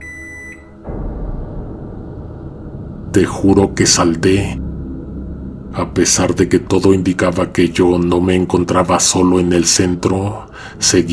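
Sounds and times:
microwave oven beeping: 0.0 - 0.8
broadband rumbling hum: 0.9 - 10.7
speech: 3.1 - 4.6, 5.7 - 11.1.

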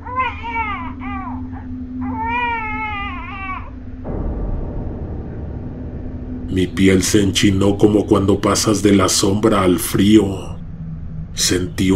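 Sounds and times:
baby wailing in drawn-out cries: 0.0 - 3.8
low rumbling hiss: 0.0 - 11.9
speech: 6.5 - 10.5, 11.4 - 11.9.

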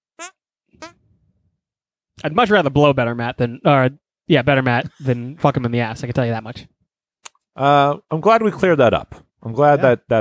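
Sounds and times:
squeaky hand fart noises: 0.2 - 1.0
speech: 2.2 - 6.8, 7.6 - 10.1.

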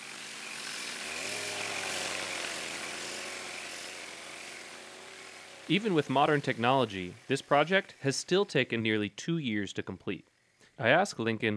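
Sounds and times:
chainsaw cutting wood: 0.0 - 8.8, 10.3 - 10.8
speech: 5.7 - 11.5.

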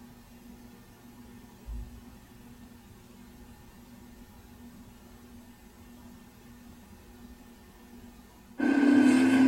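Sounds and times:
steady low mechanical hum from machines in a robotics research lab: 0.0 - 9.4
louder buzzing machine in a robotics research lab: 8.6 - 9.4.

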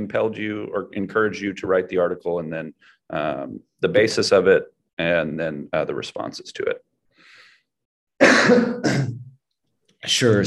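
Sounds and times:
speech: 0.0 - 6.9, 8.4 - 9.2, 10.0 - 10.4
raspy coughs: 8.2 - 9.4.

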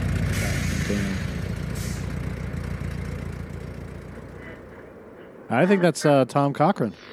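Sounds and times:
car engines rumbling at idle: 0.0 - 5.7
brief hiss: 0.3 - 2.1
speech: 0.9 - 1.3, 5.5 - 7.1.

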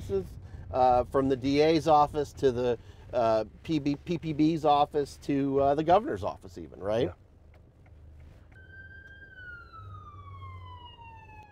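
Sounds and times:
low rumble of traffic: 0.0 - 11.5
speech: 0.1 - 7.2
ambulance siren passing by: 8.5 - 11.5.

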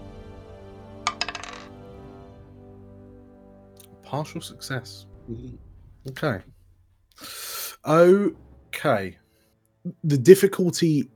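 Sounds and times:
dice clattering onto a hard surface: 1.1 - 1.7
speech: 4.1 - 6.6, 7.2 - 9.2, 9.8 - 11.1.

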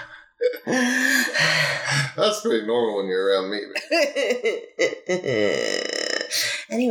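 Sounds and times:
voice imitating heavy breathing: 0.0 - 2.2, 4.8 - 6.7
speech: 0.7 - 1.5, 2.2 - 6.9.

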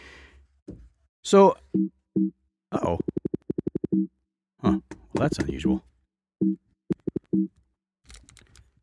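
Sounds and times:
speech: 1.3 - 3.2, 4.0 - 6.6
malfunctioning computer keyboard typing after tea spilled on it: 3.0 - 4.1, 6.4 - 7.5.

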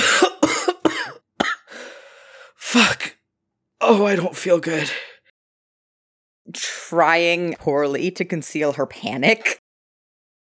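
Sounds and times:
person coughing hard while struggling for breath: 0.0 - 1.8
drawn-out rasping breath: 1.6 - 2.6
speech: 2.8 - 3.0, 3.9 - 5.1, 6.5 - 9.6.

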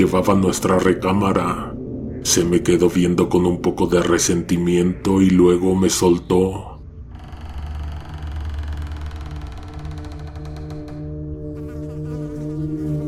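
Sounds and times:
speech: 0.0 - 6.7
swarm of flies buzzing: 11.1 - 13.0.

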